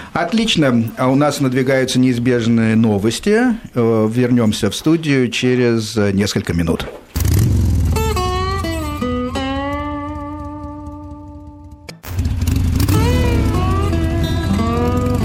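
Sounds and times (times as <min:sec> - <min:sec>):
speech: 0:00.2 - 0:07.2
V-twin motorcycle engine revving through several gears: 0:07.2 - 0:15.2.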